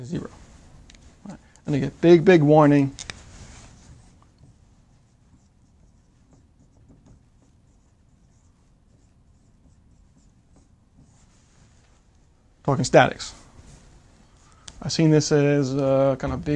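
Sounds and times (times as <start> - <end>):
speech: 0.0 - 0.4, 1.2 - 3.0, 12.7 - 13.4, 14.8 - 16.5
writing on a board: 3.7 - 12.0.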